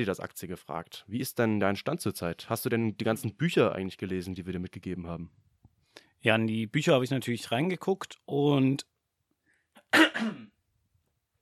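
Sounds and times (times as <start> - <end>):
speech: 0.0 - 5.5, 6.2 - 8.9, 9.9 - 10.5
faint breath: 5.8 - 6.2, 9.4 - 9.8
throat clearing: 9.8 - 10.6.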